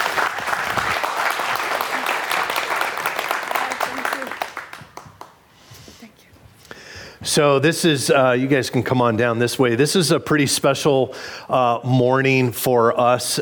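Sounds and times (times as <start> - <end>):
crowd applauding: 0.0 - 5.4
speech: 7.4 - 13.4.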